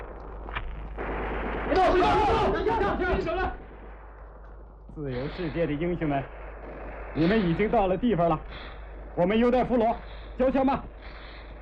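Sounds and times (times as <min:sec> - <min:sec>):
artillery-like blasts: 0:00.0 - 0:11.5
battle gunfire in dense rapid bursts: 0:00.0 - 0:11.5
men shouting urgently: 0:01.7 - 0:03.6
speech: 0:05.0 - 0:06.4, 0:07.2 - 0:11.2.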